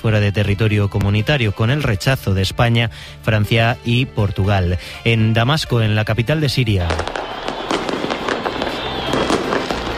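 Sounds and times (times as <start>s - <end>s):
speech: 0.0s - 7.1s
fireworks crackling and popping outdoors in celebration: 6.8s - 9.9s.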